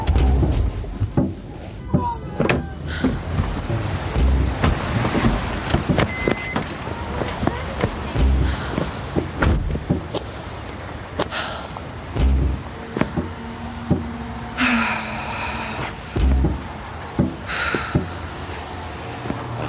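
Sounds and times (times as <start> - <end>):
clicks and thumps: 0.0 - 10.3, 12.2 - 14.2, 16.2 - 18.2
car engine rumbling as it slows and pulls over: 0.0 - 19.6.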